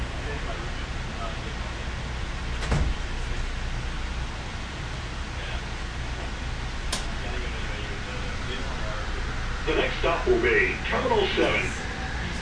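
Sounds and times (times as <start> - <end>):
steady rushing hum of the airport train cabin: 0.0 - 12.4
airport train sliding doors thudding shut: 2.5 - 3.2
sharp click of train doors: 6.9 - 7.1
speech: 10.1 - 11.8.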